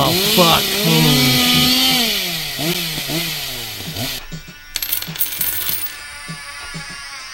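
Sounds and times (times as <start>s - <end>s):
chainsaw revving and sputtering at idle: 0.0s - 4.3s
speech: 0.1s - 1.2s.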